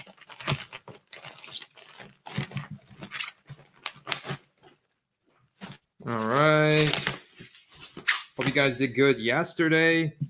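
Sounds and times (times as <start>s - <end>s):
package box being torn open by hand: 0.0s - 4.5s, 6.7s - 7.2s
speech: 6.1s - 7.1s, 8.5s - 10.2s.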